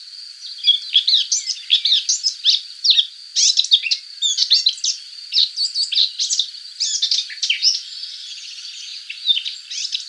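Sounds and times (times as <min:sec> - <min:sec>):
Subalpine warbler singing scratchy twittering: 0:00.0 - 0:10.0.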